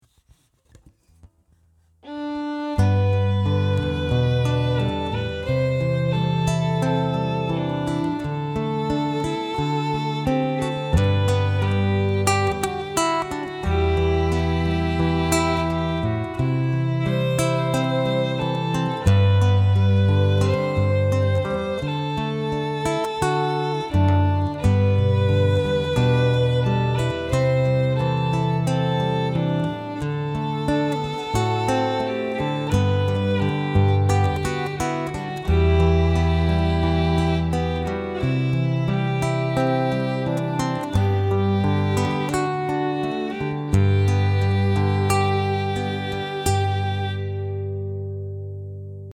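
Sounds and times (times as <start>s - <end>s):
guitar: 0.7s - 49.1s
violin: 2.0s - 48.4s.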